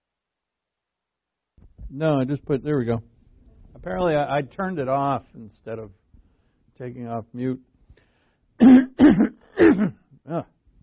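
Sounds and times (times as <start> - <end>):
speech: 1.9 - 3.1, 3.8 - 6.0, 6.8 - 7.7, 8.6 - 10.5
person clearing throat to bring up phlegm: 8.6 - 10.5.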